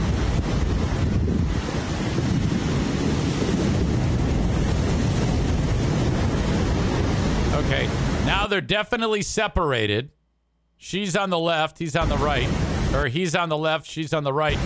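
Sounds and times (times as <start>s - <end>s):
heavy wind buffeting the microphone: 0.0s - 8.4s
ocean surf breaking at a beach: 0.0s - 8.7s, 11.0s - 14.6s
speech: 8.5s - 10.2s, 10.8s - 14.6s.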